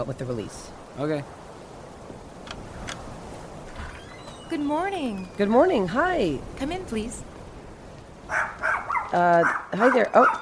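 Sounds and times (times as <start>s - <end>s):
speech: 0.0s - 1.4s, 4.5s - 7.3s, 9.1s - 10.4s
dog barks: 8.3s - 10.4s.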